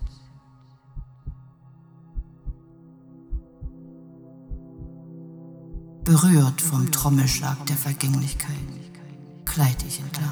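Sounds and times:
slow deep heartbeat thumps: 0.0s - 0.3s, 0.9s - 1.4s, 2.2s - 2.6s, 3.3s - 3.8s, 4.5s - 5.0s, 5.7s - 6.2s
speech: 6.1s - 8.8s, 9.6s - 10.3s.

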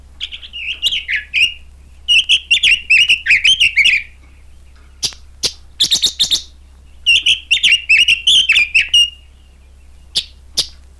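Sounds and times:
red-billed leiothrix singing in riverside tugai thickets in Semirechye: 0.0s - 10.9s.

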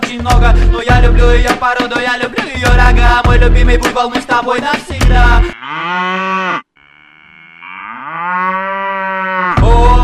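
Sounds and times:
speech: 0.1s - 6.6s
cow mooing: 5.5s - 9.6s.

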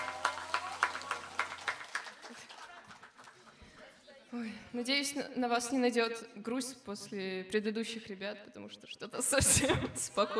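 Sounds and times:
audience applause: 0.0s - 3.9s
speech: 4.4s - 10.3s.

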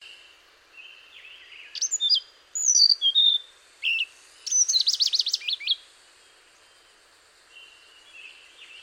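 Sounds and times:
Hainan blue flycatcher Cyornis hainanus singing sweet high whistled phrases: 1.7s - 5.8s.

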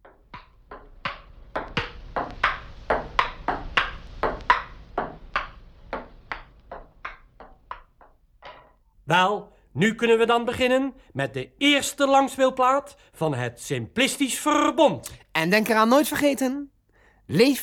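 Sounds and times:
ball being hit from left to right as a stereo speaker test: 0.0s - 8.8s
speech: 9.1s - 16.7s, 17.3s - 17.6s.

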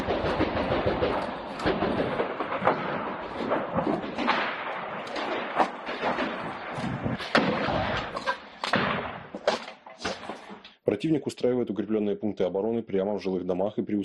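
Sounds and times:
continuous rumbling din of combat: 0.0s - 9.2s
artillery fire: 0.0s - 10.5s
gunfire: 0.0s - 10.5s
speech: 11.0s - 14.0s.

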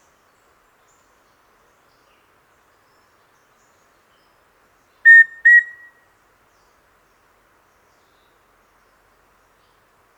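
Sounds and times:
rufous-breasted antthrush Formicarius rufipectus song of two flat whistled notes: 5.1s - 6.0s.

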